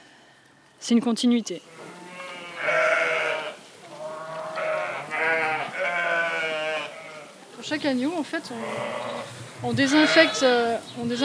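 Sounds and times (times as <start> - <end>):
speech: 0.8 - 1.7, 7.7 - 11.2
low murmur of the sheep flock: 1.5 - 11.2
ewes bleating on a family farm: 1.7 - 7.4, 8.5 - 11.2.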